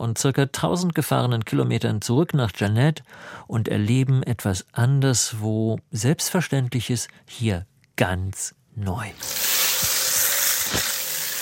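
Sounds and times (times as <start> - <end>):
speech: 0.0 - 9.4
shower water spraying down: 9.2 - 11.3.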